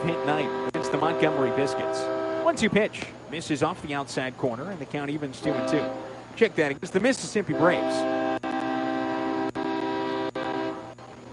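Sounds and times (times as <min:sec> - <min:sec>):
train horn blaring near the outfield wall of a baseball stadium: 0:00.0 - 0:02.8, 0:05.4 - 0:06.3, 0:07.3 - 0:11.0
speech: 0:00.0 - 0:08.2.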